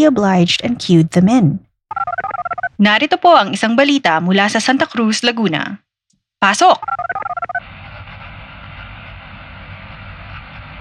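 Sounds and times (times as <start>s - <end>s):
speech: 0.0s - 2.1s, 2.8s - 5.8s, 6.4s - 7.8s
quick electronic beeps: 1.9s - 2.7s, 6.8s - 7.6s
radio static over a phone patch: 6.8s - 8.1s.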